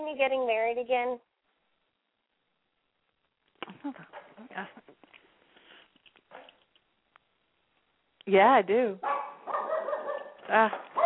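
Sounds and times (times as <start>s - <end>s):
speech: 0.1s - 1.3s, 3.8s - 5.0s, 8.2s - 9.6s, 10.5s - 11.0s
dog barking: 9.0s - 11.0s.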